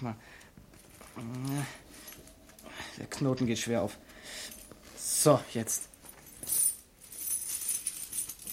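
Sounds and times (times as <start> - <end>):
speech: 0.0 - 0.5, 1.2 - 2.1, 3.0 - 4.6, 5.2 - 5.9
gold and silver coins clinking in a linen bag: 6.2 - 8.5.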